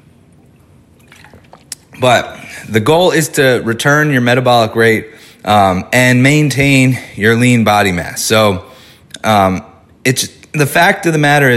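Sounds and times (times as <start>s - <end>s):
small wet drips: 0.3s - 1.9s
person taking a quick sip of water: 0.3s - 2.0s
speech: 2.0s - 11.5s.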